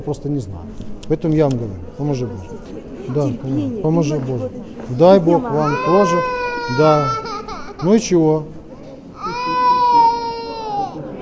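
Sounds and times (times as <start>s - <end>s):
speech: 0.0s - 8.6s
faint murmur: 0.0s - 11.2s
baby crying: 5.5s - 8.1s, 9.2s - 11.0s.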